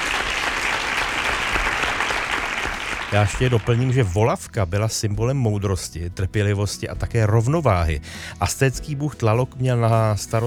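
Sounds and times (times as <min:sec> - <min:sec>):
quiz show audience applause after a correct answer: 0:00.0 - 0:04.1
speech: 0:03.1 - 0:10.4.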